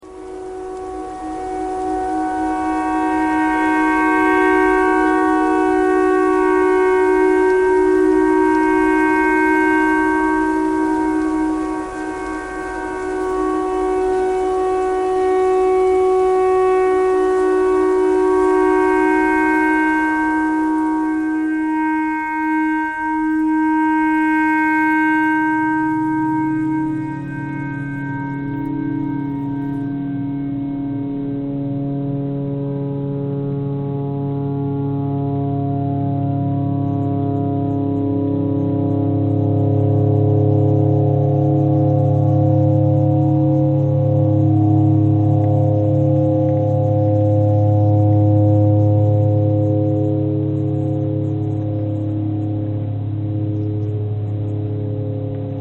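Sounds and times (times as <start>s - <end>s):
clarinet playing pentatonic melody: 0.0s - 55.6s.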